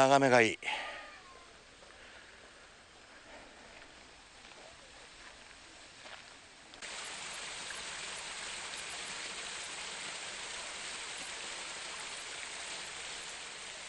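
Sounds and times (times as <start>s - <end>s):
speech: 0.0s - 0.9s
small stream flowing through a Japanese garden: 6.8s - 13.8s.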